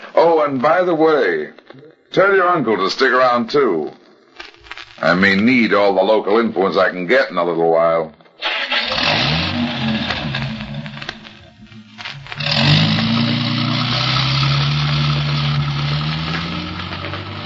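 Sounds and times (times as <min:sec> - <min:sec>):
speech: 0:00.2 - 0:04.0, 0:05.0 - 0:08.2
car engine cranking, starting and revving as the car pulls away: 0:08.4 - 0:17.4.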